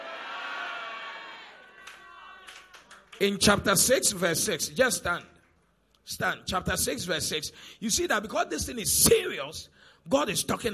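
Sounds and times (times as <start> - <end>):
audience shouting amen: 0.0 - 2.6
speech: 3.2 - 5.3, 6.1 - 10.7.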